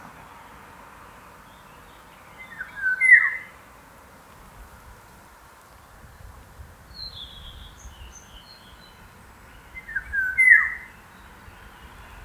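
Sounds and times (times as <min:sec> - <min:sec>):
golden oriole singing: 0:01.1 - 0:03.6, 0:06.9 - 0:12.2.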